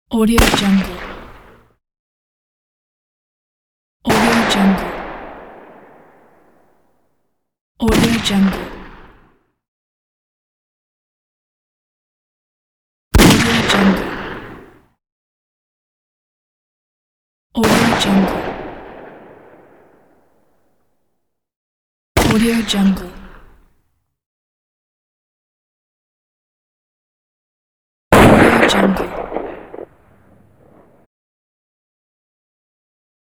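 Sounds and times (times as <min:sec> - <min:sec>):
gunshots: 0:00.3 - 0:01.6, 0:04.1 - 0:06.8, 0:13.2 - 0:14.7, 0:17.6 - 0:20.3, 0:22.2 - 0:22.7, 0:28.1 - 0:31.1.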